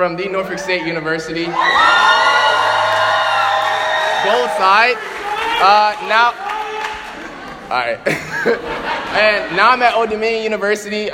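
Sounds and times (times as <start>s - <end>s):
speech: 0.0s - 2.3s, 4.3s - 6.4s, 7.7s - 11.1s
loud crowd whooping, cheering and screaming a name: 1.4s - 7.4s
laughter: 4.3s - 10.5s.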